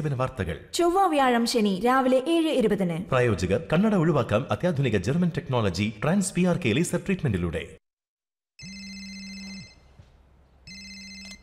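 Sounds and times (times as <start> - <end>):
speech: 0.0 - 7.8
telephone ringing for an incoming call: 8.6 - 10.0, 10.7 - 11.4.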